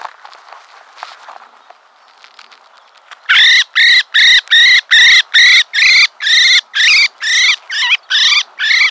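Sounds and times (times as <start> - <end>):
common blackbird Turdus merula harsh buzzy calls: 3.2 - 8.8.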